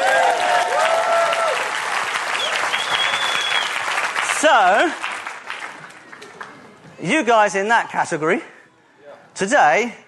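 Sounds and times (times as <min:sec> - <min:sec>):
crowd cheers and whoops: 0:00.0 - 0:03.7
crowd applauding: 0:00.0 - 0:06.8
speech: 0:04.4 - 0:05.1, 0:07.0 - 0:08.5, 0:09.4 - 0:10.0.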